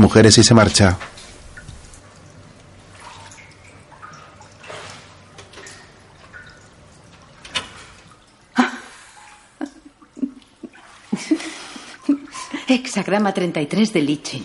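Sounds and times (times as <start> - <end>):
speech: 0.0 - 1.1, 13.0 - 14.4
small water drips at pool edge: 0.0 - 13.2
hand splashing water at pool edge: 1.1 - 12.5
laughter: 9.6 - 12.7.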